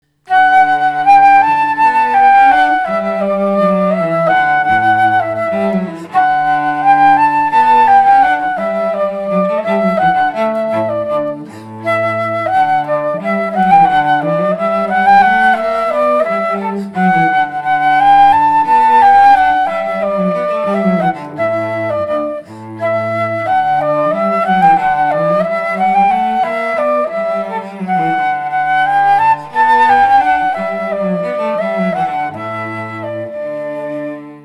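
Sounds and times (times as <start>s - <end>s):
cello: 0.0s - 34.4s
flute: 0.2s - 34.4s.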